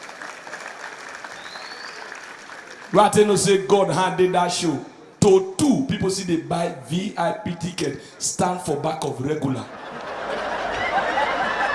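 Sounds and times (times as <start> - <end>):
audience clapping: 0.0 - 3.5
speech: 2.9 - 9.8
laughter: 9.5 - 11.7.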